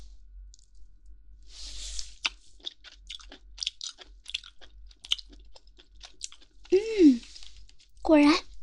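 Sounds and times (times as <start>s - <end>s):
chewing crunchy pork jowl meat: 2.0s - 8.0s
speech: 8.1s - 8.5s.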